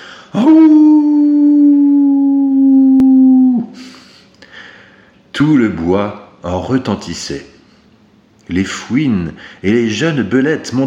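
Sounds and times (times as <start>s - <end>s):
person imitating a wolf howl: 0.3s - 3.8s
speech: 5.4s - 7.5s, 8.5s - 10.8s.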